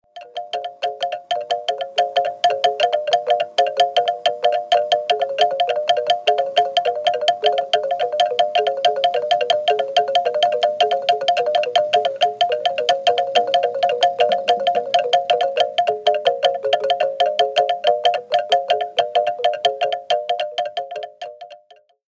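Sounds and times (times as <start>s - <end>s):
Baoule xylophone playing world music from Cote d'Ivoire: 0.0s - 22.0s.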